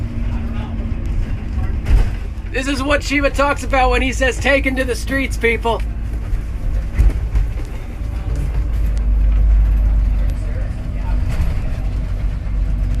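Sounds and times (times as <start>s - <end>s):
long convoy of vehicles driving past around a street corner: 0.0s - 12.9s
speech: 2.5s - 5.9s.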